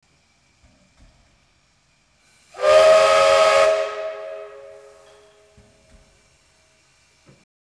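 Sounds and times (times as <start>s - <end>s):
steam train horn: 2.5s - 5.6s.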